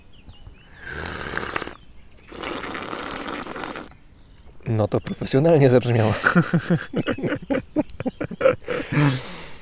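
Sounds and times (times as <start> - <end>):
double slurping of tea: 0.8 - 3.9
speech: 4.7 - 7.9, 8.7 - 9.4
laughter: 5.9 - 9.6.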